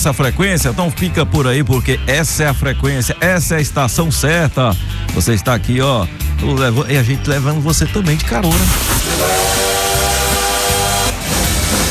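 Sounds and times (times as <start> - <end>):
speech: 0.0 - 9.6
low rumbling: 7.1 - 11.8
train whistle sound effect with steam hiss: 8.7 - 11.8.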